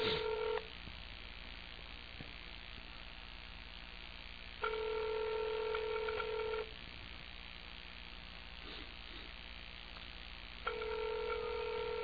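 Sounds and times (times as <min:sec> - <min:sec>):
telephone ringback tone heard over the line: 0:00.0 - 0:00.6, 0:04.6 - 0:06.7, 0:10.7 - 0:12.0
faint hiss over the telephone line: 0:00.0 - 0:12.0.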